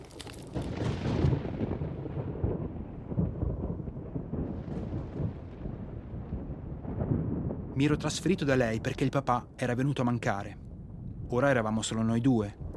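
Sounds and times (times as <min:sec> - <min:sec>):
steady storm wash: 0:00.0 - 0:12.7
deep loud rolling thunder: 0:00.4 - 0:09.6
speech: 0:07.8 - 0:10.6, 0:11.3 - 0:12.6.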